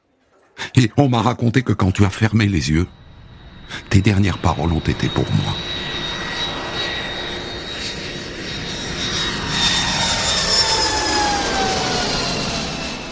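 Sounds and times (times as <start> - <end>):
speech: 0.8 - 3.0, 3.7 - 5.8
jet airliner engines roaring at Charles de Gaulle airport: 2.1 - 13.1.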